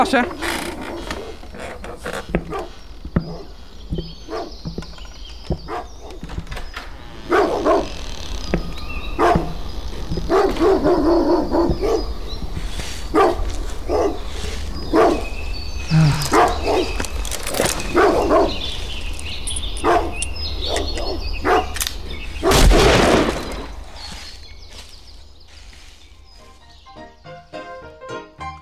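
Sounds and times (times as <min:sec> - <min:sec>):
speech: 0:00.0 - 0:00.5
creaking: 0:00.0 - 0:10.6, 0:15.8 - 0:25.3
steady hum: 0:00.0 - 0:28.0
dog barking: 0:02.5 - 0:03.5, 0:04.3 - 0:04.6, 0:05.6 - 0:06.2, 0:07.3 - 0:07.9, 0:09.2 - 0:09.5, 0:10.3 - 0:12.1, 0:13.1 - 0:14.2, 0:14.9 - 0:15.3, 0:16.3 - 0:16.9, 0:19.8 - 0:21.7.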